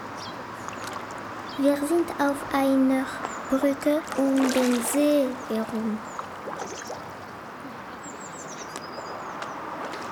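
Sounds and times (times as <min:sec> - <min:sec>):
car traffic heard from a bridge around a lake: 0:00.0 - 0:10.0
lake water washing, heard from a bridge around a lake: 0:00.0 - 0:10.0
people heard from a bridge around a lake: 0:01.6 - 0:06.0
speech: 0:01.6 - 0:06.1.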